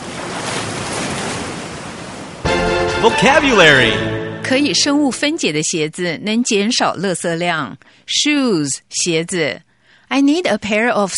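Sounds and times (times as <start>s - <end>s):
ocean surf breaking: 0.0s - 5.0s
speech: 3.0s - 11.1s.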